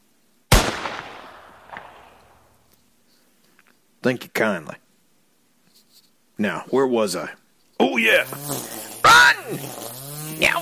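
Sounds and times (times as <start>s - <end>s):
Winchester .410 rifle gunshot fired at a snake: 0.5s - 2.5s
speech: 4.0s - 4.8s, 6.4s - 8.8s, 9.5s - 10.6s.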